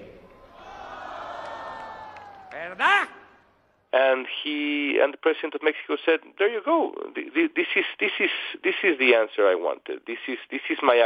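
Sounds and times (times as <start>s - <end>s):
large rally crowd shouting together: 0.3s - 3.4s
speech: 3.9s - 11.0s.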